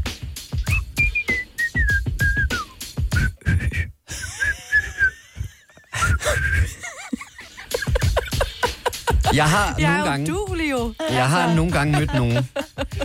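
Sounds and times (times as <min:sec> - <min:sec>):
person whistling a simple wavering tune: 0:00.6 - 0:05.2, 0:06.0 - 0:06.8
stifled laughter: 0:03.4 - 0:09.8, 0:11.0 - 0:13.0
speech: 0:09.4 - 0:13.0.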